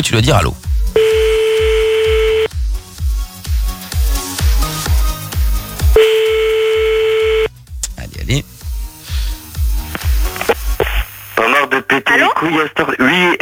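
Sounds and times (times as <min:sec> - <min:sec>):
speech: 0:00.0 - 0:01.1, 0:08.3 - 0:08.5, 0:11.9 - 0:13.4
rhythmic low thumping beat: 0:00.7 - 0:11.1
steady telephone line tone during a call: 0:01.0 - 0:02.5, 0:06.0 - 0:07.5.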